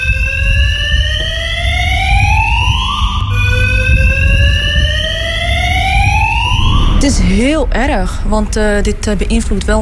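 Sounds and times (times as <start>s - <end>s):
parking garage fire alarm wailing: 0.0s - 7.6s
low rumbling background: 0.0s - 9.8s
speech: 7.1s - 9.8s.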